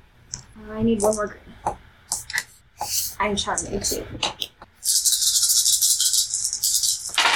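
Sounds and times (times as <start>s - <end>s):
speech: 0.6s - 2.2s, 3.2s - 4.5s
dice rattling during a tabletop role-playing game: 4.8s - 7.3s.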